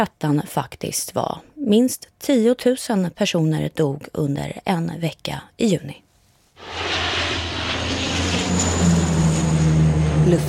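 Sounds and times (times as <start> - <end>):
speech: 0.0 - 6.0, 8.6 - 8.9, 10.3 - 10.4
low-flying firefighting airplane engine roaring overhead: 6.6 - 10.4.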